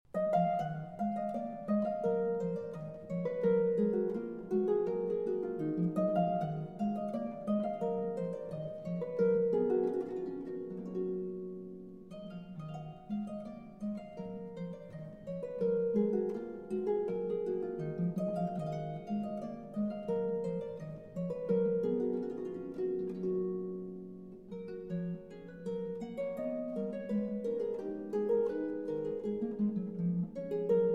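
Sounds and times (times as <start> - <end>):
lute bourrée: 0.1 - 30.9.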